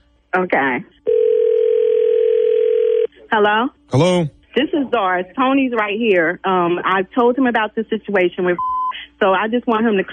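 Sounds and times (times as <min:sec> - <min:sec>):
speech: 0:00.3 - 0:01.2, 0:03.3 - 0:10.1
telephone dial tone during three-way call setup: 0:01.1 - 0:03.1.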